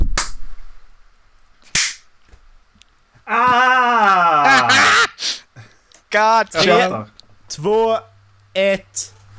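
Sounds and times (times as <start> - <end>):
hand claps for recording sync: 0.1 - 0.4, 1.7 - 2.0
laughter: 4.4 - 5.2
speech: 6.2 - 9.2.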